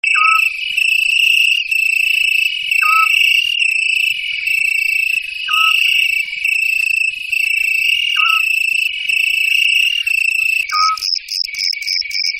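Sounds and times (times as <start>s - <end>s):
scops owl calling: 0.1s - 1.0s, 1.6s - 11.0s.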